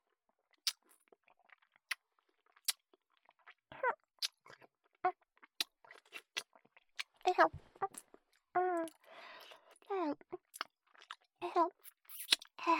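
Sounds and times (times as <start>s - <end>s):
chewing crunchy food: 0.6s - 3.6s, 4.2s - 4.7s, 5.4s - 8.2s, 8.9s - 12.6s
speech: 7.4s - 7.6s
soft mouth noises: 11.8s - 12.6s.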